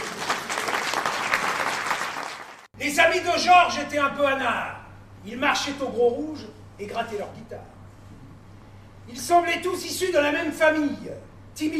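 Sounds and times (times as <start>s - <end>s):
audience applauding: 0.0s - 2.7s
speech: 3.0s - 7.8s, 9.1s - 11.7s.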